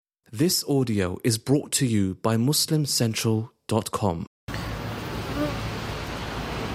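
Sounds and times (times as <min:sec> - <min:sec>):
speech: 0:00.3 - 0:04.3
broadband noise: 0:00.3 - 0:06.7
bees humming: 0:04.5 - 0:06.0.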